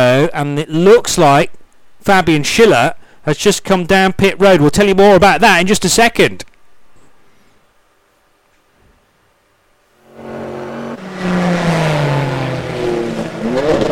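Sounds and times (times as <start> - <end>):
speech: 0.2 - 6.5
BMW M4 race car shifting down the gears during an endurance race: 10.0 - 13.8.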